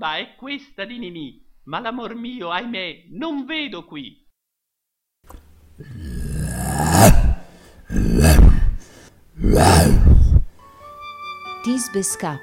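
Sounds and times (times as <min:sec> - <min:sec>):
speech: 0:00.0 - 0:04.2, 0:05.2 - 0:07.2, 0:11.6 - 0:12.4
person imitating a lion's roar in a stage play: 0:05.8 - 0:10.5.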